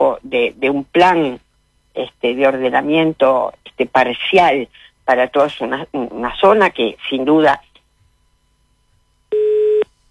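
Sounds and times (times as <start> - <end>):
speech: 0.0 - 1.4, 2.0 - 7.7
telephone tone as a call cuts off: 9.3 - 9.8.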